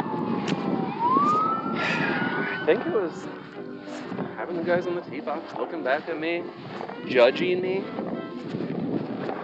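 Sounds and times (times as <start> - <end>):
park police car siren wailing in a rising sweep: 0.0 - 3.3
speech: 2.7 - 3.5, 4.1 - 8.6.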